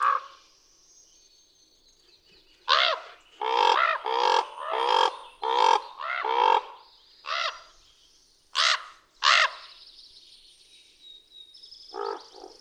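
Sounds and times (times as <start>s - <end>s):
common raven uttering grating nasal croaks: 2.7s - 7.6s, 11.9s - 12.5s.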